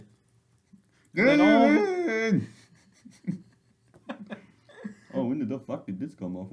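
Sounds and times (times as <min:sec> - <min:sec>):
voice imitating dog whimpering: 0:01.2 - 0:02.5
breathy murmurs: 0:01.2 - 0:02.6
speech: 0:01.2 - 0:03.4, 0:05.2 - 0:06.5
laughter: 0:01.2 - 0:05.2.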